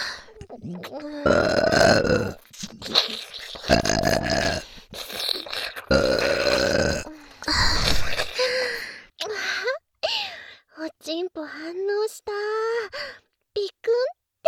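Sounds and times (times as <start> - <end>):
breaths and small vocal noises: 0.0 - 13.4
loud drawn-out deliberate burps: 0.4 - 8.5
speech: 0.7 - 2.4.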